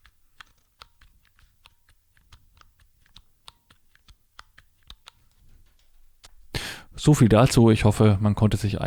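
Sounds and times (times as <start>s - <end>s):
mechanical Braille input keyboard keys clicking: 0.0s - 6.3s
speech: 7.0s - 8.8s.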